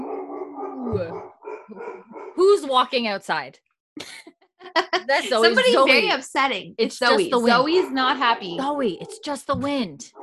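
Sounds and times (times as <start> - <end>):
dog growling in a low rumble and barking: 0.0 - 2.4
speech: 0.9 - 10.2
laughter: 4.0 - 6.2.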